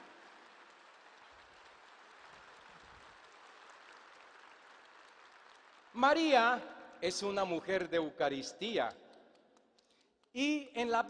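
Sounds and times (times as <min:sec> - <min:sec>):
audience applauding: 0:00.0 - 0:07.5
speech: 0:06.0 - 0:09.0, 0:10.3 - 0:11.0.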